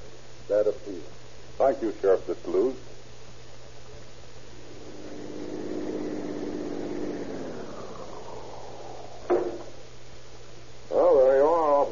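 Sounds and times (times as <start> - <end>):
speech: 0.5 - 2.9
police car engine rumbling during a ride: 4.2 - 10.8
loud wavering siren-like wail: 4.4 - 9.9
sharp knock: 9.3 - 9.7.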